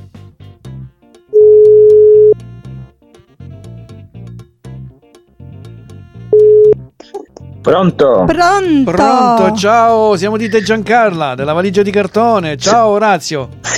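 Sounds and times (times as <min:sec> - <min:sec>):
music: 0:00.0 - 0:13.7
telephone ringback tone while placing a call: 0:01.4 - 0:02.4, 0:06.3 - 0:06.8
speech: 0:07.6 - 0:13.7.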